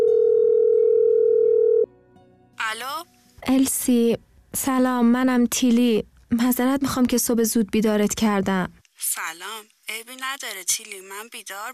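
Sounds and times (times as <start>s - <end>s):
steady telephone tone during an early morning call: 0.0s - 1.9s
speech: 2.8s - 11.7s.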